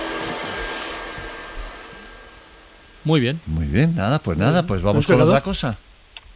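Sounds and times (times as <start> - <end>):
hair dryer blowing: 0.0 - 2.6
speech: 3.0 - 5.8.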